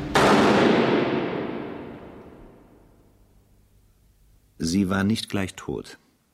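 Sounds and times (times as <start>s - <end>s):
firing squad rifle volley at an execution in a fortress moat: 0.0s - 2.8s
speech: 4.6s - 6.0s.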